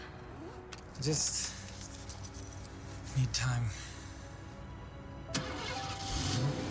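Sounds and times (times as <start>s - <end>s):
speech: 1.0s - 1.6s, 3.2s - 3.8s
car engine cranking and starting: 5.3s - 6.7s.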